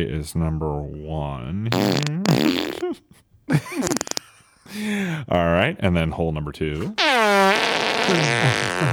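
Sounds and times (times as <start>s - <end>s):
speech: 0.0s - 4.0s, 4.7s - 7.4s, 8.1s - 8.9s
fart: 1.7s - 3.0s, 3.8s - 4.3s, 7.0s - 8.9s.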